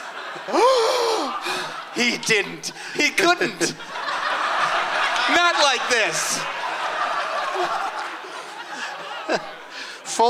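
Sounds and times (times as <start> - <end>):
laughter: 0.0 - 10.2
speech: 0.4 - 4.0, 5.3 - 6.6, 7.6 - 7.9
person gasping: 0.5 - 1.8, 2.7 - 3.0.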